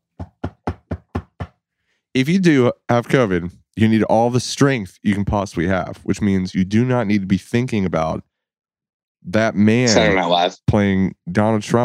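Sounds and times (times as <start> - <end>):
knuckles knocking on wood: 0.1 - 1.6
speech: 2.2 - 8.3, 9.2 - 11.8.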